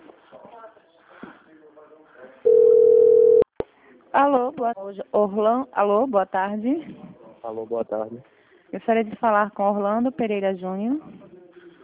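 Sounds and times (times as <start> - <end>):
steady single-pitched telephone tone during a call transfer: 2.5 - 3.5
speech: 4.2 - 11.2.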